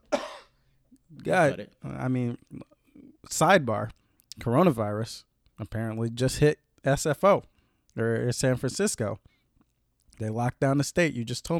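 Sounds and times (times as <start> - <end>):
single sharp breathy cough: 0.1 - 0.6
speech: 1.2 - 9.3, 10.2 - 11.5.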